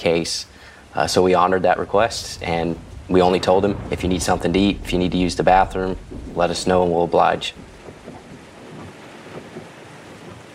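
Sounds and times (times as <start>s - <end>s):
speech: 0.0s - 7.7s
heavy driving rain during a car drive: 0.0s - 10.5s
low rumbles of thunder: 0.0s - 10.5s
car windshield wipers at full speed: 5.5s - 10.5s.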